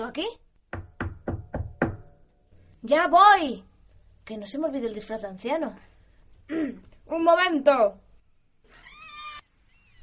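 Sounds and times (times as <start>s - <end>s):
speech: 0.0s - 0.4s, 2.8s - 3.7s, 4.3s - 5.9s, 6.5s - 8.0s
firm knocking on a door: 0.7s - 2.2s.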